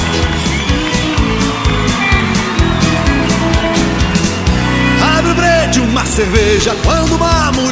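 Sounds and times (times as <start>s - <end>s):
large rodeo crowd in Planaltina Brazil cheering and shouting: 0.0s - 7.7s
speech: 6.1s - 7.7s.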